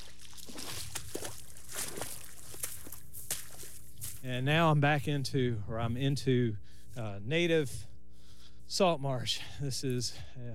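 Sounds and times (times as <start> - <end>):
footsteps sloshing through the shallow water of a little pond: 0.0 - 4.4
steady low hum: 0.0 - 10.5
speech: 4.2 - 7.9, 8.7 - 10.5.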